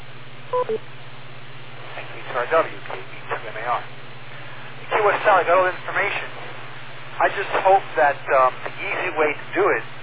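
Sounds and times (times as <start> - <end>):
constant low hum and hiss on an amateur radio link: 0.0 - 10.0
speech: 0.5 - 1.0, 2.3 - 4.0, 4.8 - 6.4, 7.2 - 10.0
short electronic beeps over an amateur radio link: 0.6 - 0.8.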